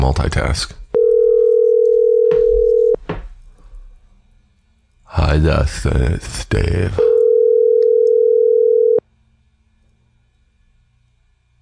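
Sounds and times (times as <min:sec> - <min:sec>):
speech: 0:00.1 - 0:00.8, 0:05.2 - 0:07.1
telephone ringback tone: 0:01.0 - 0:03.0, 0:07.0 - 0:09.0.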